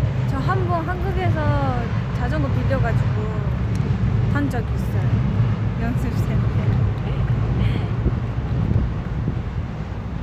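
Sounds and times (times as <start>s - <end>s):
subway train rumbling past with a rushing hiss: 0.0s - 10.2s
speech: 0.5s - 6.8s.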